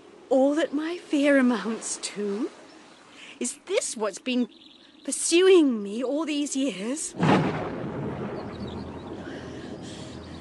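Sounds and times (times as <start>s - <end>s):
faint windy hiss: 0.0s - 10.3s
speech: 0.3s - 2.6s, 3.4s - 7.6s
distant thunder of an approaching storm rumbling: 7.2s - 10.3s.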